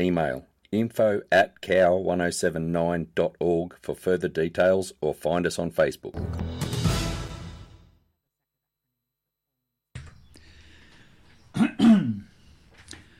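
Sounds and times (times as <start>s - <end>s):
speech: 0.0s - 6.9s
rough throat-clearing coughs: 11.5s - 12.4s
person coughing: 11.6s - 12.3s.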